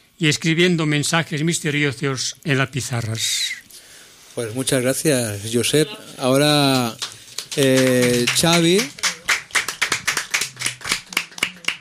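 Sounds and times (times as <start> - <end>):
speech: 0.2 - 3.7, 4.4 - 9.0
small group applauding in a radio studio: 6.1 - 11.7.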